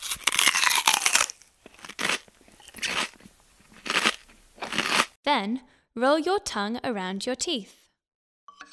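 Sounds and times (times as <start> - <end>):
crunching bite into a coconut: 0.0 - 5.2
speech: 5.4 - 7.8.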